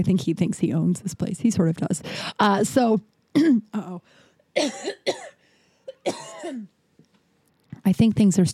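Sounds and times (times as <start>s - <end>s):
speech: 0.0s - 5.3s, 6.0s - 6.8s, 7.8s - 8.5s
chesty phlegmy coughing: 3.4s - 3.7s, 4.6s - 6.7s.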